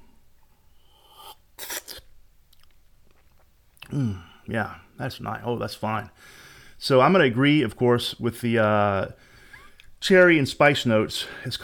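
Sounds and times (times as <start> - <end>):
person sipping wine: 0.7 - 4.4
speech: 3.9 - 9.2, 10.0 - 11.6.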